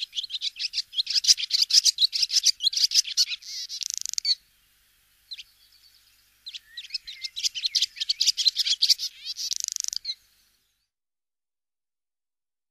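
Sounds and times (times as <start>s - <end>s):
barn swallow twittering: 0.0s - 4.4s, 5.3s - 10.9s.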